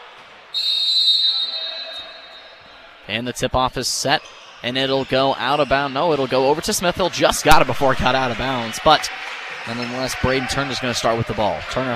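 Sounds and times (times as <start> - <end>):
noisy gym crowd: 0.0 - 11.9
referee's whistle blast: 0.5 - 2.8
speech: 3.1 - 11.9.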